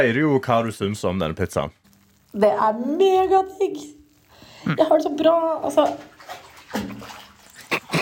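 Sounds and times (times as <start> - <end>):
speech: 0.0 - 4.0, 4.6 - 7.2
bathwater splashing and sloshing in a bubble bath: 3.0 - 8.0.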